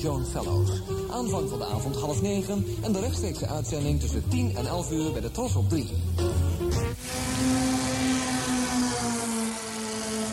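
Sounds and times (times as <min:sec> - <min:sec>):
speech: 0:00.0 - 0:06.4
MG sports car engine running: 0:06.9 - 0:10.3.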